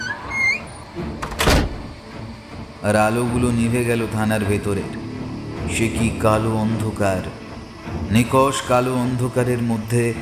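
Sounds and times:
outer door of a police station slamming shut: 1.2 - 2.0
speech: 2.8 - 5.0, 5.6 - 7.4, 8.0 - 10.2.

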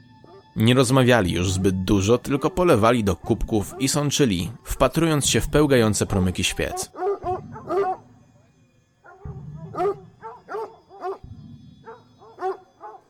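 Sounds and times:
speech: 0.6 - 7.0
dogs barking and yapping: 6.6 - 8.4, 9.0 - 13.0.

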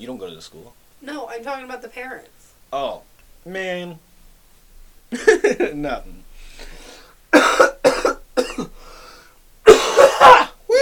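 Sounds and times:
speech: 0.0 - 4.1, 5.1 - 6.3
person coughing harshly: 7.3 - 8.8, 9.6 - 10.6.

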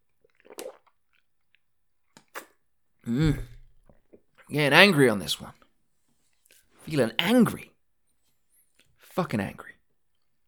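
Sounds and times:
short wet gulps: 0.2 - 1.2, 3.1 - 4.3
sipping and slurping from a drink: 0.2 - 1.2, 2.2 - 4.2
speech: 3.1 - 3.5, 4.5 - 5.6, 6.9 - 7.7, 9.2 - 9.7
loud voiced exhale or sigh: 3.1 - 3.6.

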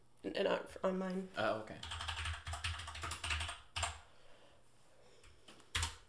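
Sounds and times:
speech: 0.4 - 2.0
rapid forceful typing on a computer keyboard: 1.8 - 4.0, 5.2 - 6.0.

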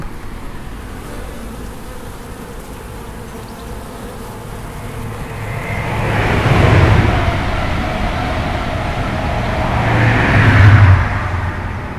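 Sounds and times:
passing train rumbling on the line toward London Paddington: 4.6 - 11.9.

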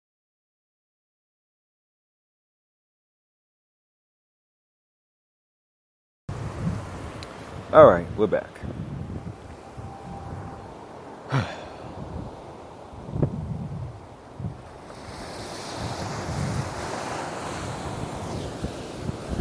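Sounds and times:
gusts of wind buffeting the microphone: 6.3 - 19.3
ocean waves breaking on a beach at Santa Monica in the morning: 6.3 - 19.3
speech: 7.7 - 8.8, 11.3 - 11.6.

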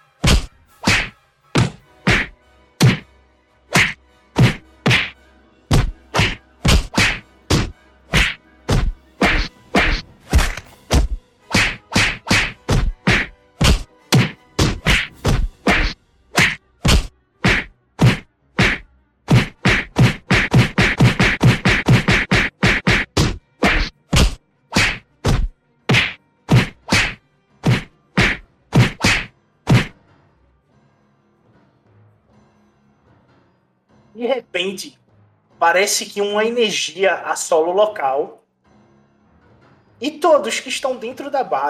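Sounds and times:
fight blows and impacts inside a base: 0.2 - 3.0, 3.7 - 30.0
speech: 34.2 - 35.0, 35.6 - 38.4, 40.0 - 41.6.

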